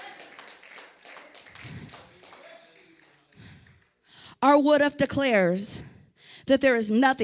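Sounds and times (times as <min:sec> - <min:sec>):
audience clapping in praise to God: 0:00.0 - 0:04.0
speech: 0:04.4 - 0:05.8, 0:06.5 - 0:07.2.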